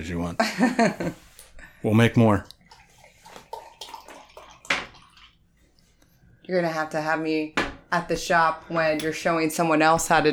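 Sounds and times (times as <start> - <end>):
speech: 0.0 - 2.5, 6.5 - 10.3
liquid pouring into a glass: 2.4 - 5.9.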